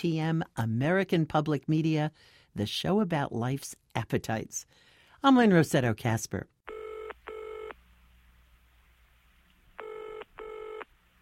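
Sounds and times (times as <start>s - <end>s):
speech: 0.0s - 6.5s
telephone keypad tones: 9.8s - 10.9s.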